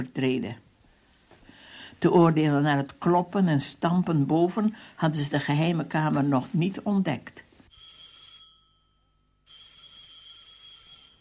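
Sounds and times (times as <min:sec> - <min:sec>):
speech: 0:00.0 - 0:00.6, 0:02.0 - 0:07.4
telephone ringing in electronic trilling bursts: 0:07.7 - 0:11.1.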